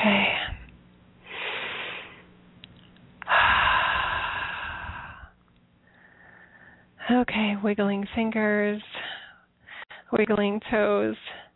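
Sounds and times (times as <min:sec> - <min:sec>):
deep slow breathing during a guided relaxation session: 0:01.2 - 0:02.3, 0:03.2 - 0:07.0
speech: 0:07.2 - 0:08.9, 0:10.1 - 0:11.3.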